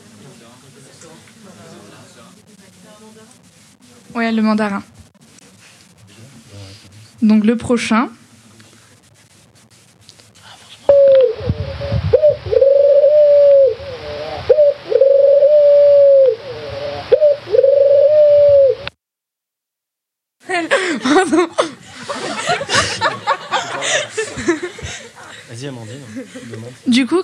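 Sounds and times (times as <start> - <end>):
speech: 0.6 - 5.0, 7.2 - 8.2
turtle dove cooing: 10.9 - 18.9
laughter: 20.4 - 26.9.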